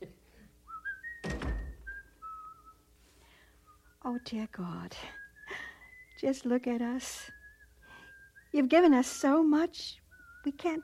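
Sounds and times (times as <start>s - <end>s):
person whistling a slow tune: 0.7s - 2.9s, 5.0s - 6.4s, 7.2s - 9.3s, 10.1s - 10.8s
dull thump: 1.2s - 2.0s
speech: 4.1s - 5.2s, 6.2s - 7.4s, 8.5s - 10.8s.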